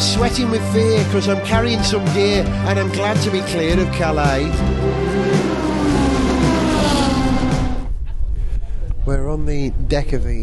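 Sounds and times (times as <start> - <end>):
speech: 0.1 - 5.4, 9.1 - 10.4
Porsche engine running steadily: 4.5 - 7.9.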